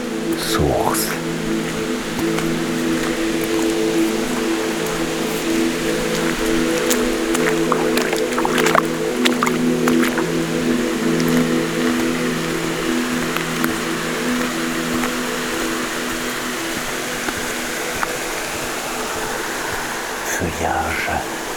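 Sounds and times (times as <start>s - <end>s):
small waterfall at a spring in the misty humid Mikou state forest pouring: 0.2s - 21.5s
speech: 0.3s - 3.2s.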